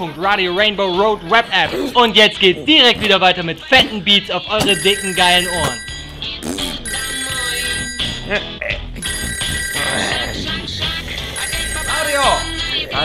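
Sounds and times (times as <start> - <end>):
speech: 0.0 - 6.6, 8.3 - 8.5
telephone bell ringing: 4.7 - 10.5, 11.3 - 13.0.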